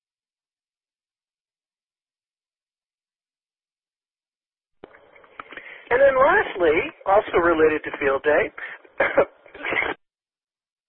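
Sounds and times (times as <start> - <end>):
speech: 5.9 - 9.4
rough throat clearing: 9.0 - 9.9
person coughing: 9.0 - 10.0.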